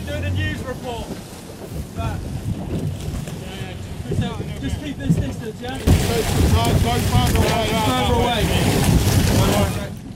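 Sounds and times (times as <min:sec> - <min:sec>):
small boat engine rumble: 0:00.0 - 0:08.0
water slapping below a small boat: 0:00.0 - 0:10.1
wind buffeting the microphone on a small boat at sea: 0:00.0 - 0:10.1
speech: 0:00.1 - 0:01.3, 0:04.2 - 0:09.8.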